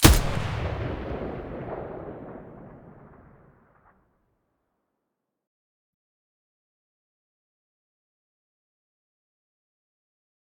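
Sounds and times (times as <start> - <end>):
MDR weapon muzzle firing: 0.0 - 3.5.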